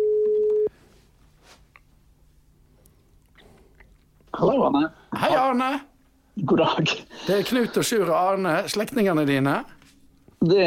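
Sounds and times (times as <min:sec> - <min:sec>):
telephone ringing tone while placing a call: 0:00.0 - 0:00.7
speech: 0:04.4 - 0:09.8, 0:10.4 - 0:10.6.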